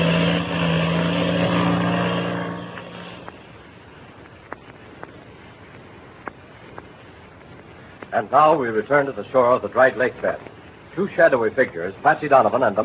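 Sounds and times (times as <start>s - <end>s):
engine of a black two-seater airplane taking off: 0.0s - 3.5s
speech: 8.2s - 12.8s.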